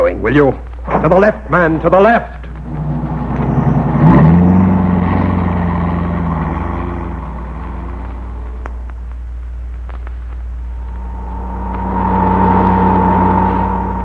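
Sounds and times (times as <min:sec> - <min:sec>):
speech: 0:00.0 - 0:02.4
car engine starting, revving and accelerating away: 0:02.6 - 0:08.6, 0:10.7 - 0:14.0.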